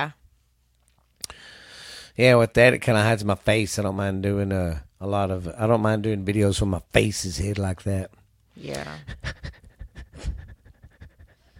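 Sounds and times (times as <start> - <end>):
speech: 0.0 - 0.2, 2.2 - 9.6
rhythmic Lamaze-style panting breaths: 8.9 - 11.5.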